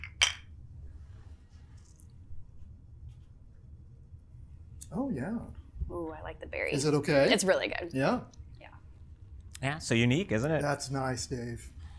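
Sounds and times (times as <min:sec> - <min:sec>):
beer glasses clinking in a toast: 0:00.0 - 0:00.5
speech: 0:04.9 - 0:08.4, 0:09.6 - 0:11.8.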